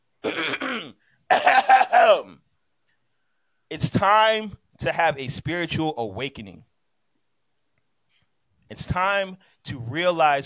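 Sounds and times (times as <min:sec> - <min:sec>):
voiced throat clearing: 0:00.2 - 0:02.3
speech: 0:03.7 - 0:06.7, 0:08.7 - 0:10.4.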